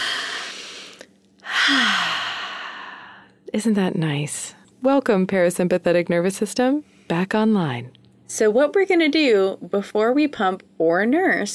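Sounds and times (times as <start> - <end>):
deep relaxing breath in and long loud exhale: 0.0 - 3.3
short voiced sigh falling in pitch: 0.0 - 3.4
speech: 3.5 - 11.5.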